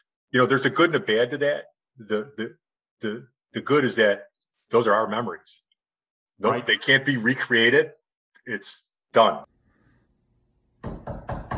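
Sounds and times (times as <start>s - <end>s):
speech: 0.3s - 5.6s, 6.4s - 9.5s
firm knocking on a door: 10.8s - 11.5s.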